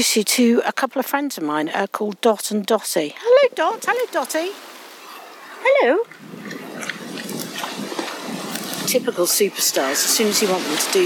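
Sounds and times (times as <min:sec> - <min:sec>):
speech: 0:00.0 - 0:04.7, 0:05.6 - 0:07.0, 0:08.9 - 0:11.0
two pigs grunting and snuffling: 0:03.2 - 0:11.0.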